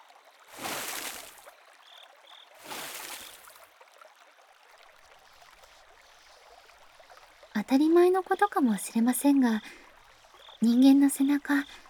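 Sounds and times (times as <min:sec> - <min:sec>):
water poured over someone's back as a rinse: 0:00.5 - 0:01.5, 0:02.6 - 0:03.7
speech: 0:07.6 - 0:09.8, 0:10.6 - 0:11.8.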